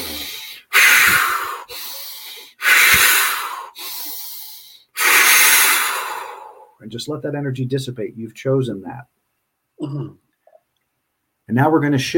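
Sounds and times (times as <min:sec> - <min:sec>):
quick deep breaths, nose in, mouth out: 0:00.0 - 0:06.8
speech: 0:06.9 - 0:09.2, 0:09.8 - 0:10.2, 0:11.5 - 0:12.1.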